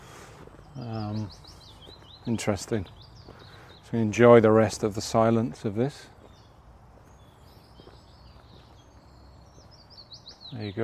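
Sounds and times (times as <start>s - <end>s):
soft footstep-like thuds: 0.0s - 2.4s, 5.5s - 9.8s
birds chirping and twittering outdoors: 0.0s - 10.8s
speech: 0.8s - 3.1s, 3.9s - 6.1s, 10.6s - 10.8s.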